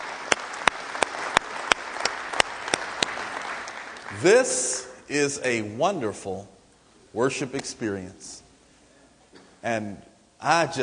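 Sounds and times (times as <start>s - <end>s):
audience clapping hands in steady rhythm: 0.0s - 5.0s
speech: 4.1s - 8.4s, 9.6s - 10.8s.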